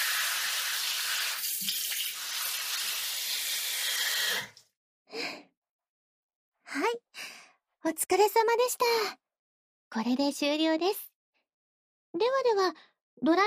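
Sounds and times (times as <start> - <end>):
running water rinsing the back of the head during a hair wash: 0.0 - 4.6
speech: 7.9 - 9.2, 9.9 - 11.1, 12.1 - 13.4.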